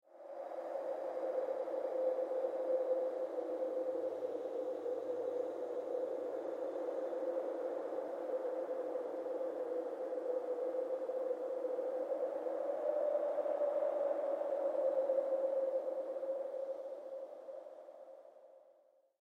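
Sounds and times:
strange eerie horror wind: 0:00.1 - 0:18.4.

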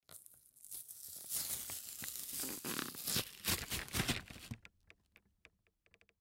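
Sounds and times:
cardboard and plastic package opening slowly: 0:00.1 - 0:04.6.

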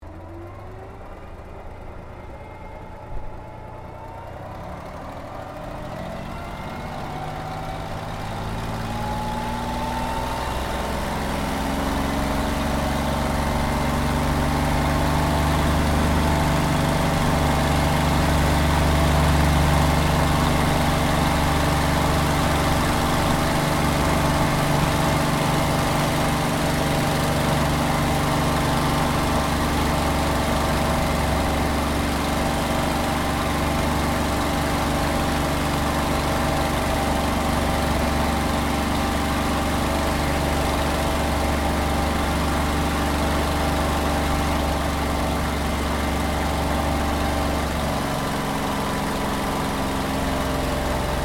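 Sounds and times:
WW2 P-40 Kittyhawk fighter plane taking off heard from the interior: 0:00.2 - 0:51.2.

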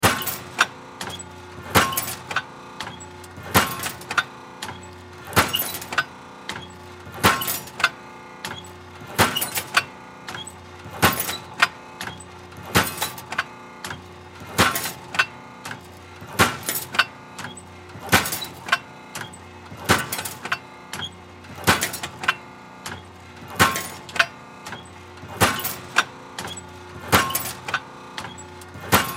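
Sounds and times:
factory metal shear machine pounding and squeaking: 0:00.0 - 0:29.1.

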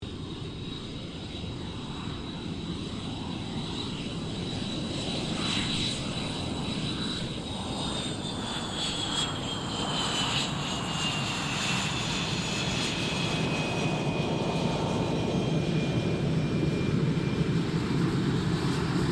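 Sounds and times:
RAAF FA-18 Hornet fighter jet taxiing: 0:00.1 - 0:19.1.

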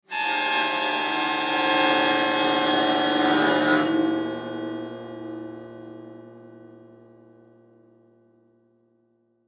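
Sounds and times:
cartoon autoharp string scraped with a bow: 0:00.1 - 0:05.8.

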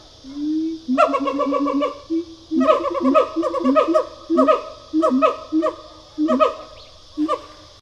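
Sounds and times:
siamang pair call with hooting, barks and yelps: 0:00.9 - 0:02.0, 0:02.6 - 0:07.5.

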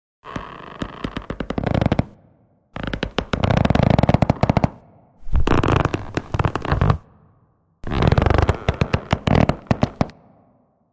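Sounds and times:
wood creaking: 0:00.2 - 0:02.1, 0:02.8 - 0:04.5, 0:05.2 - 0:07.0, 0:07.8 - 0:10.1.

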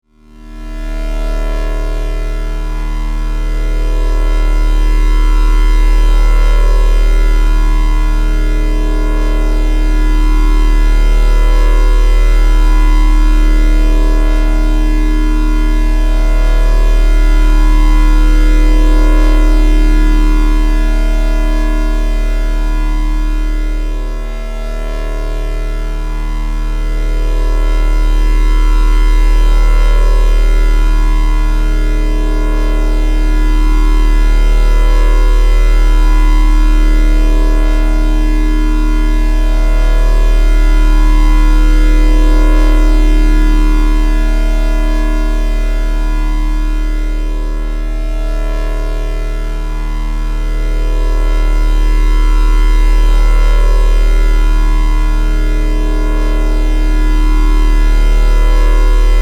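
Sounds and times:
sci-fi electrical hum: 0:00.2 - 0:59.2.

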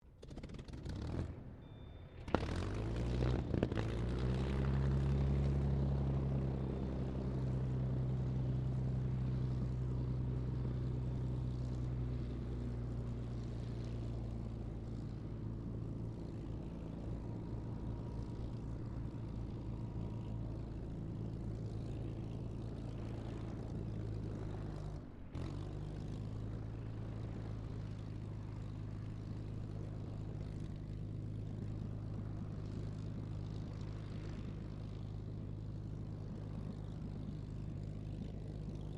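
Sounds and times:
distant P-40F Kittyhawk aircraft engine starting: 0:00.2 - 0:38.9.

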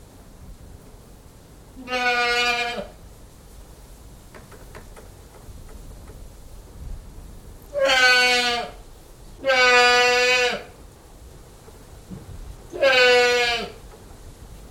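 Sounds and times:
Old English goat bleating: 0:01.8 - 0:02.9, 0:07.8 - 0:08.8, 0:09.4 - 0:10.7, 0:12.7 - 0:13.8
wind noise: 0:02.9 - 0:10.0, 0:10.7 - 0:14.6.

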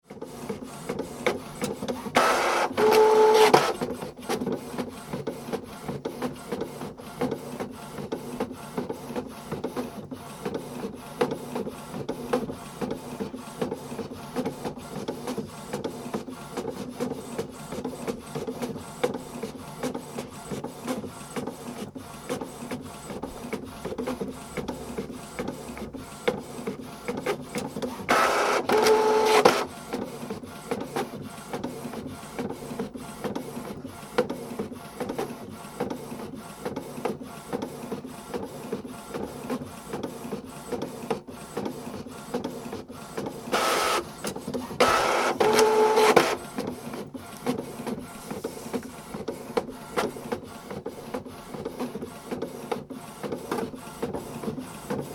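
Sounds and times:
small portable bubble jet printer printing: 0:00.0 - 0:55.1.

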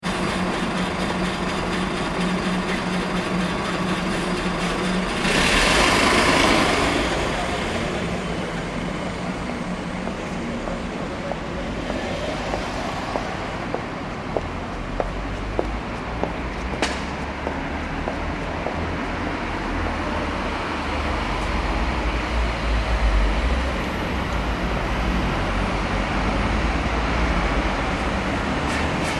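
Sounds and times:
city street bus idling and pulling away: 0:00.0 - 0:29.1
people walking on a city street: 0:10.0 - 0:19.5.

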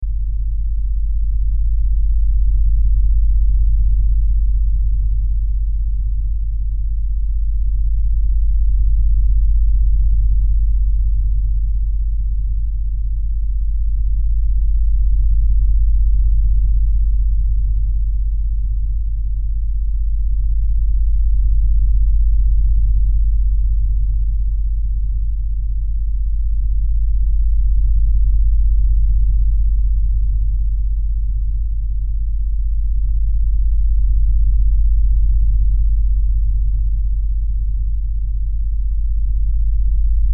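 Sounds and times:
LFE low bass rumble drone: 0:00.0 - 0:40.3.

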